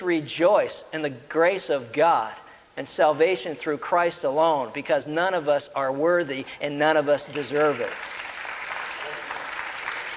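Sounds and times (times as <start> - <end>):
speech: 0.0 - 8.2
audience clapping: 7.3 - 10.1.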